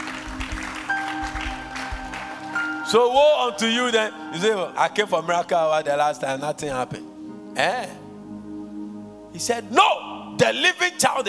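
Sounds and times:
congregation applause: 0.0s - 3.2s
speech: 2.9s - 8.0s, 9.4s - 11.2s.

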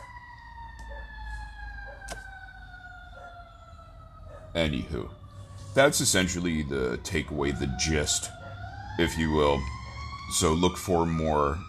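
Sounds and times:
emergency vehicle sirens wailing: 0.0s - 11.6s
low rumble of traffic: 0.0s - 11.6s
speech: 4.6s - 5.2s, 5.8s - 8.4s, 9.0s - 11.6s.

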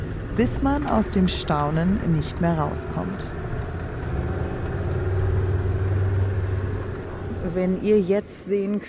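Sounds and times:
Land Rover engine starting and driving along the dunes: 0.0s - 8.3s
speech: 0.4s - 3.5s, 7.5s - 8.8s.

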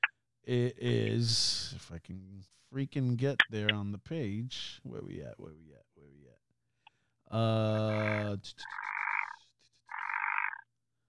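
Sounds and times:
speech: 0.5s - 6.5s, 7.3s - 8.9s
frog croaking: 7.6s - 10.7s.

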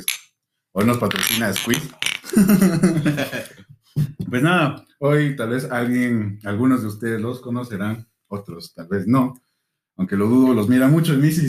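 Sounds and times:
speech: 0.8s - 9.4s, 10.0s - 11.4s
glasses clinking in a toast: 1.1s - 2.4s
laughter: 2.2s - 4.3s.

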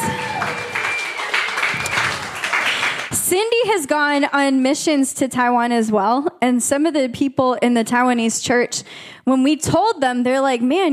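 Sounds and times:
church congregation applauding at a Sunday service: 0.0s - 3.2s
speech: 3.3s - 10.9s.

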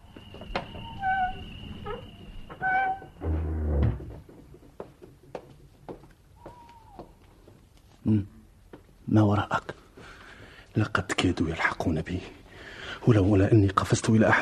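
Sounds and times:
door being opened in a drama scene: 0.3s - 4.5s
speech: 8.1s - 8.3s, 9.2s - 9.8s, 10.8s - 12.4s, 13.0s - 14.4s.

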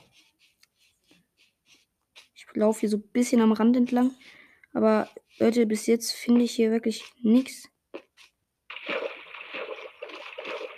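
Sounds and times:
speech: 2.6s - 7.7s
water splashing as someone wades through a river current: 8.7s - 10.7s.

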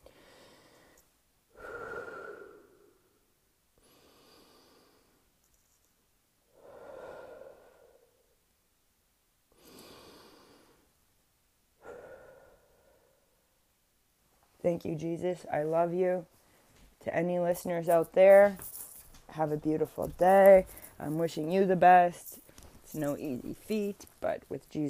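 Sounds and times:
deep breathing: 0.0s - 5.3s, 6.5s - 8.4s, 9.5s - 11.0s, 11.8s - 13.4s
speech: 14.6s - 16.4s, 17.0s - 18.8s, 19.4s - 24.8s.

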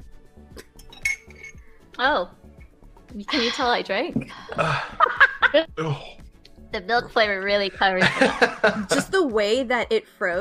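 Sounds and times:
glasses clinking in a toast: 0.6s - 1.7s
speech: 2.0s - 2.4s, 3.1s - 10.3s
laughter: 4.4s - 5.7s, 7.9s - 9.2s.

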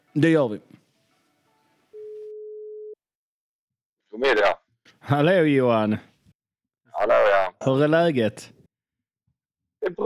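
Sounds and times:
speech: 0.2s - 0.8s, 4.2s - 6.1s, 7.0s - 8.6s, 9.8s - 10.0s
electronic telephone ringing tone while placing a call: 1.9s - 3.0s.

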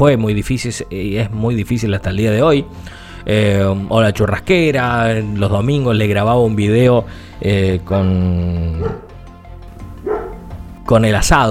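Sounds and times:
speech: 0.0s - 9.0s, 10.9s - 11.5s
dog barking: 8.8s - 9.1s, 10.0s - 10.5s.

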